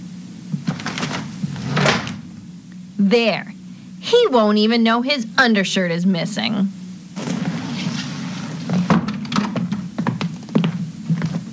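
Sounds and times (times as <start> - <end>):
low steady hum: 0.0 - 11.5
wooden dresser drawer being pushed shut: 0.6 - 2.2, 7.2 - 9.6
speech: 3.0 - 6.8.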